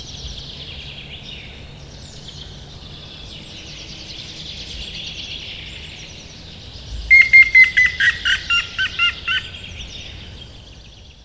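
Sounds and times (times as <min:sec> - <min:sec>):
Grey-headed woodpecker calling clear whistled notes: 0:07.1 - 0:09.5.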